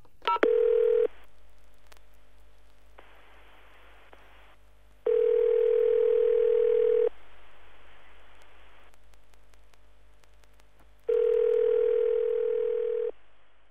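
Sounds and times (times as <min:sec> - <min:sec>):
telephone ringing tone: 0:00.4 - 0:01.1, 0:05.1 - 0:07.1, 0:11.1 - 0:13.1
telephone dial tone: 0:05.1 - 0:07.1, 0:11.1 - 0:13.1.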